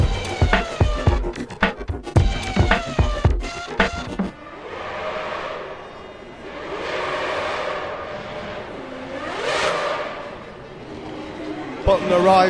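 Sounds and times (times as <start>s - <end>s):
racing car engines crackling at the start of a motor race: 0.0s - 12.4s
racing car engines roaring past in long passing sweeps: 4.3s - 12.4s.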